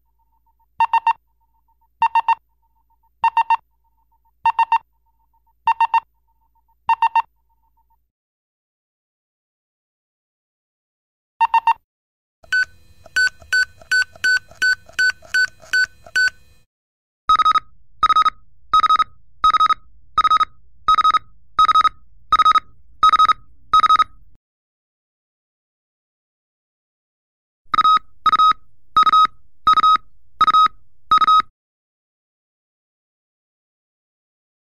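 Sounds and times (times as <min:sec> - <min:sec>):
computer device beep: 0:00.8 - 0:01.2, 0:03.2 - 0:03.6, 0:04.5 - 0:04.8, 0:05.7 - 0:06.1, 0:06.9 - 0:07.3, 0:12.4 - 0:16.7, 0:17.3 - 0:24.2, 0:27.8 - 0:31.5.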